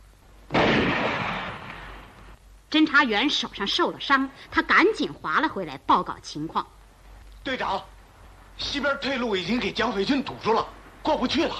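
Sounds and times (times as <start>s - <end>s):
gunshot fired at a small boat on a lake: 0.5s - 2.2s
speech: 2.7s - 6.8s, 7.4s - 7.9s, 8.6s - 11.5s.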